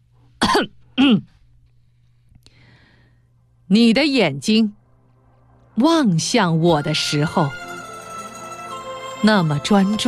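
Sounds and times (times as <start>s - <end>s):
man forcefully clearing his throat: 0.4s - 1.4s
speech: 0.5s - 1.3s, 3.7s - 4.8s, 5.8s - 7.6s, 9.2s - 10.0s.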